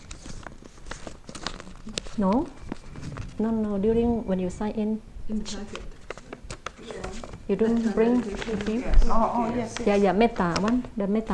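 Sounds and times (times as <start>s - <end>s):
single piece of paper rustling and crinkling: 0.0s - 3.8s, 5.5s - 11.3s
speech: 1.9s - 2.6s, 3.4s - 5.9s, 7.5s - 11.3s.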